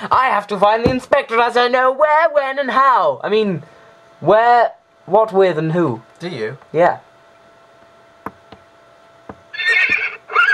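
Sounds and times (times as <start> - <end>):
speech: 0.0 - 7.1
horse hoof knocks on a hard surface: 0.8 - 1.1
horse neighing: 9.5 - 10.5.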